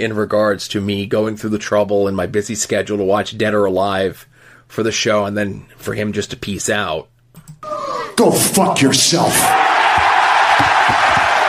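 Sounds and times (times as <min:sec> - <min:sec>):
speech: 0:00.0 - 0:09.7, 0:10.6 - 0:11.2
large crowd cheering and roaring: 0:09.2 - 0:11.4.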